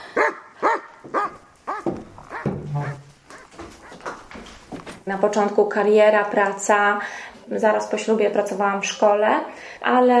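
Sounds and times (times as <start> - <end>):
Belgian shepherd dog barking and yelping: 0.1 - 4.2
speech: 5.1 - 10.1.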